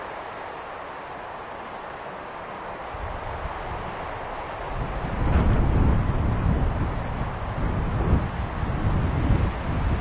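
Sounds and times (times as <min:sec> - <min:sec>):
wind whistling across a high mountain lookout: 0:00.0 - 0:09.9
wind gusts buffeting against the microphone: 0:02.8 - 0:09.9.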